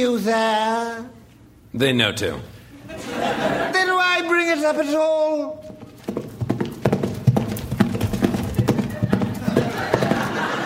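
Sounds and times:
speech: 0:00.0 - 0:05.8
laughter: 0:02.8 - 0:04.1, 0:08.5 - 0:10.6
horse hooves clip-clopping: 0:05.6 - 0:10.5.

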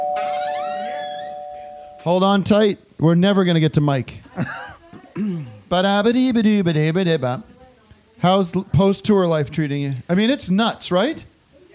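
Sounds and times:
electronic doorbell chime: 0:00.0 - 0:02.1
speech: 0:02.0 - 0:04.7, 0:05.7 - 0:07.5, 0:08.2 - 0:11.3
laughter: 0:04.3 - 0:05.0.

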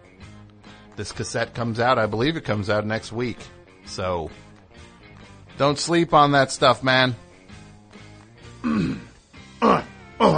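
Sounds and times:
speech: 0:01.0 - 0:04.5, 0:05.6 - 0:07.2
person clearing throat: 0:08.6 - 0:10.3
person coughing: 0:08.6 - 0:10.3.

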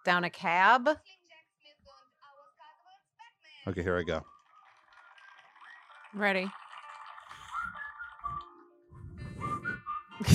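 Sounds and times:
speech: 0:00.0 - 0:01.2, 0:03.6 - 0:04.3, 0:06.1 - 0:06.6, 0:10.2 - 0:10.3
whistled tune through a small speaker: 0:04.2 - 0:06.1, 0:07.3 - 0:10.3.

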